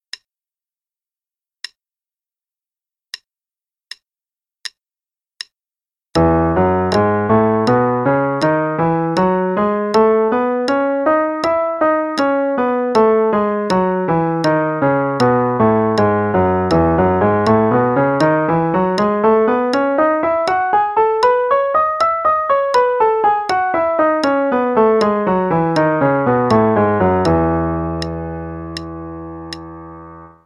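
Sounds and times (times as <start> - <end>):
E major scale in eighth notes and triplets: 6.2 - 30.4.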